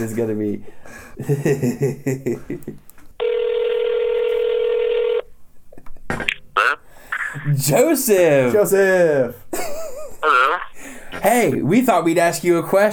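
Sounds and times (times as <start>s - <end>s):
speech: 0.0s - 2.9s, 7.4s - 9.4s, 11.2s - 12.9s
laughter: 1.2s - 2.8s, 9.5s - 10.8s
long steady ringing tone through phone speaker: 3.2s - 5.3s.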